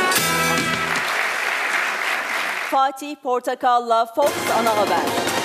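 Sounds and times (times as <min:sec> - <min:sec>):
crowd applause welcoming an award winner: 0:00.0 - 0:02.8
speech: 0:02.7 - 0:05.3.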